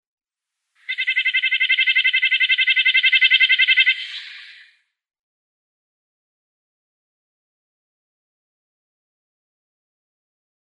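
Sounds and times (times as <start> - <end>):
Red-breasted Nuthatch singing: 0.8 - 4.7.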